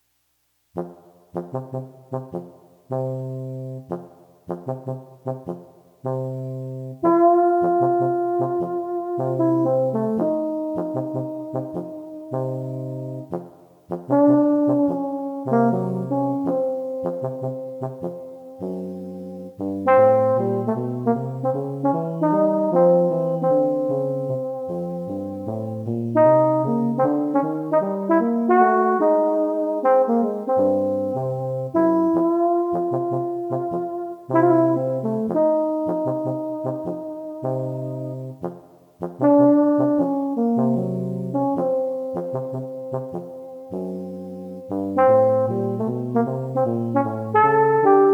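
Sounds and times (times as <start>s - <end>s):
two trombones playing a jazz duet: 0.8s - 48.1s.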